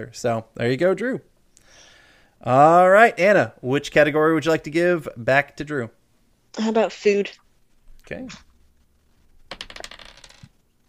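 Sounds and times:
speech: 0:00.0 - 0:06.0, 0:06.6 - 0:07.4, 0:08.1 - 0:08.5
dice clattering across a hard surface: 0:09.4 - 0:10.6.

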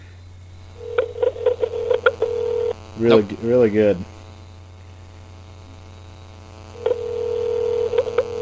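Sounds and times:
telephone line tone on a call to a flip phone: 0:00.8 - 0:02.8, 0:06.8 - 0:08.4
speech: 0:03.0 - 0:04.2.

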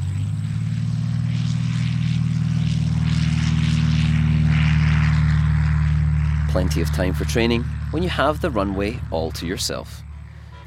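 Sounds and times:
small blue and white private propeller airplane practicing landings in Williamsport Pennsylvania: 0:00.0 - 0:10.6
speech: 0:06.6 - 0:10.1.

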